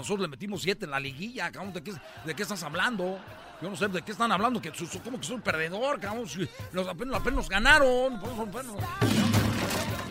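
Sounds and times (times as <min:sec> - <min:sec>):
speech: 0:00.0 - 0:09.7
laughter: 0:01.6 - 0:06.5
guitar toppling over with strings and body ringing: 0:09.0 - 0:10.0.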